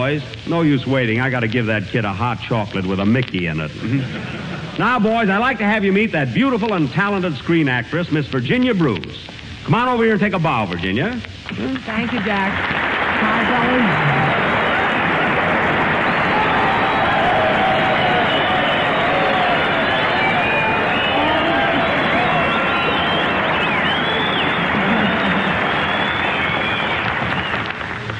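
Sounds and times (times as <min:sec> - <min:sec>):
speech: 0:00.0 - 0:14.1
laughter: 0:03.7 - 0:05.2, 0:24.3 - 0:26.1
large audience loud sustained applause: 0:12.0 - 0:28.1.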